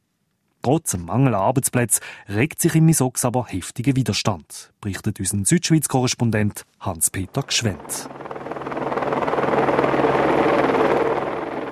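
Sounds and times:
speech: 0:00.6 - 0:08.3
helicopter taking off with rotor chop and engine roar: 0:07.2 - 0:11.7.

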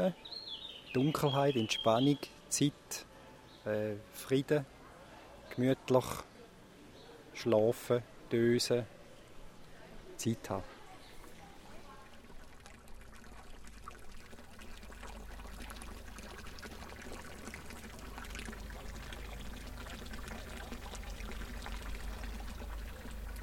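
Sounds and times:
speech: 0:00.0 - 0:04.8, 0:05.5 - 0:06.3, 0:07.4 - 0:09.0, 0:10.2 - 0:10.7
faint indistinct voices: 0:03.0 - 0:12.6
fountain water splashing and babbling: 0:11.3 - 0:23.4.

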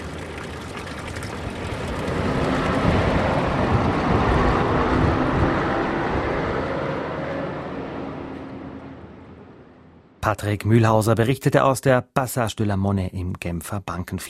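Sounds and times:
dense urban street traffic roar: 0:00.0 - 0:10.4
speech: 0:10.3 - 0:14.2.

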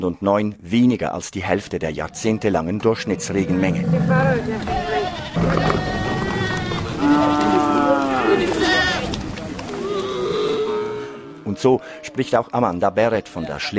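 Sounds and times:
speech: 0:00.0 - 0:06.0, 0:11.6 - 0:13.7
goats and sheep bleating in a herd: 0:02.0 - 0:12.4
rustling and movement of a herd: 0:02.2 - 0:10.7.

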